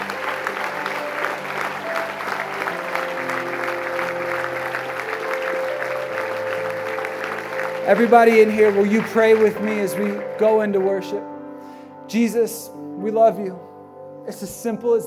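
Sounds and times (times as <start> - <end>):
congregation applause: 0.0 - 11.2
speech: 7.9 - 11.3, 12.1 - 13.7, 14.3 - 15.0.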